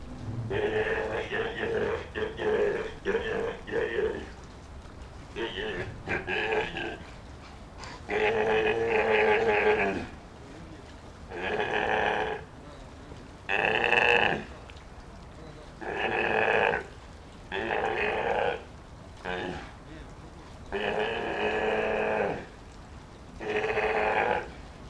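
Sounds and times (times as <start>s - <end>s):
young male Eumetopias jubatus Steller's sea lion calling to a human trainer: 0.4s - 4.4s, 5.3s - 7.1s, 7.8s - 10.2s, 11.3s - 12.5s, 15.8s - 19.7s, 20.7s - 22.6s, 23.4s - 24.6s.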